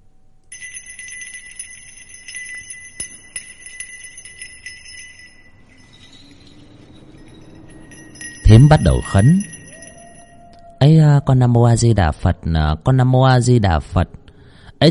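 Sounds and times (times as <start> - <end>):
hand bell rung in a folk ritual: 0.5 - 10.8
speech: 8.5 - 9.5, 10.8 - 14.2.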